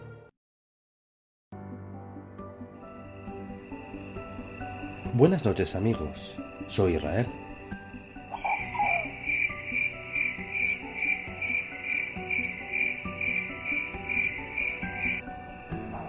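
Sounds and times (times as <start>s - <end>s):
crickets chirping at night: 2.9s - 16.0s
speech: 5.1s - 7.4s.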